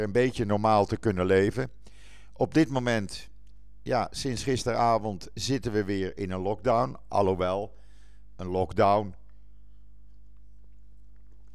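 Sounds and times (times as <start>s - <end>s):
speech: 0.0s - 1.8s, 2.4s - 7.8s, 8.4s - 9.2s
steady low electrical hum: 0.0s - 11.5s
person sipping water: 9.2s - 11.5s.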